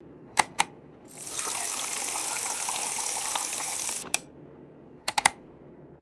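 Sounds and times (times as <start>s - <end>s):
drinking fountain turning on and off: 0.4s - 4.2s.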